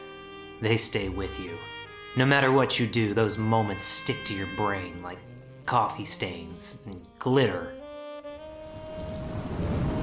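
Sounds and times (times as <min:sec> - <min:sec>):
speech: 0:00.6 - 0:07.8
steady rain falling outdoors: 0:08.3 - 0:10.0.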